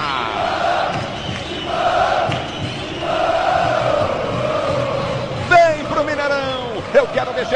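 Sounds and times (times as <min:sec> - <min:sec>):
large crowd of football fans chanting in stadium: 0:00.0 - 0:07.5.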